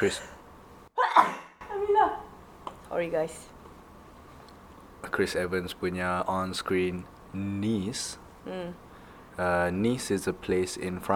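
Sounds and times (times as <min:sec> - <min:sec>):
speech: 0:00.0 - 0:00.4, 0:02.9 - 0:03.6, 0:05.0 - 0:08.8, 0:09.4 - 0:11.1
sneeze: 0:01.0 - 0:01.6.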